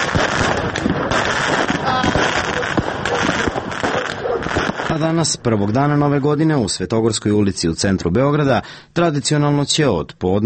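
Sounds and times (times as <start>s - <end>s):
firecrackers and fireworks popping and banging outdoors: 0.0s - 6.8s
crowd murmuring: 1.8s - 5.8s
speech: 5.0s - 10.4s.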